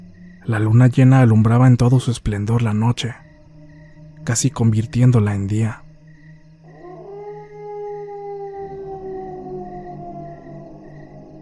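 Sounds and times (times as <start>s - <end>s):
speech: 0.4s - 3.2s, 4.2s - 5.8s
dogs howling at night under a full moon: 6.6s - 11.4s.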